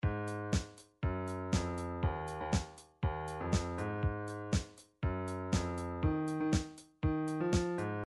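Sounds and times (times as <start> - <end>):
Motown-style MIDI drums: 0.0 - 7.9.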